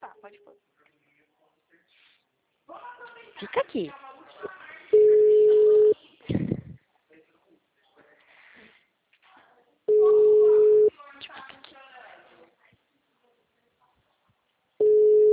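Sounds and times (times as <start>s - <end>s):
speech: 3.4s - 4.0s
ringback tone of an unanswered telephone call: 5.0s - 6.0s, 9.9s - 10.9s, 14.8s - 15.3s.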